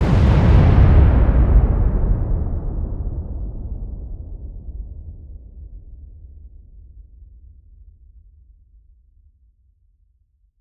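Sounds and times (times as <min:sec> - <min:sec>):
large deep dynamite demolition blasts: 0:00.0 - 0:05.7.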